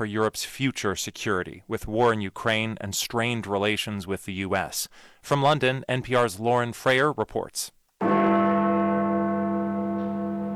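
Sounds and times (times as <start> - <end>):
speech: 0.0 - 8.1
deep clock tower bell tolling at noon: 8.0 - 10.5.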